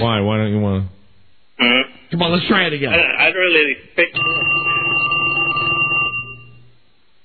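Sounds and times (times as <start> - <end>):
speech: 0.0 - 1.0, 1.6 - 4.7
telephone ringing with bell-like trill: 4.0 - 6.7.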